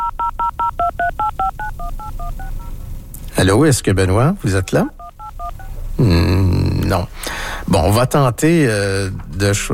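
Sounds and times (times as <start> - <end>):
touch-tone telephone dialing dual-tone beeps: 0.0 - 2.7, 5.0 - 5.8
speech: 3.4 - 5.0, 6.0 - 9.7.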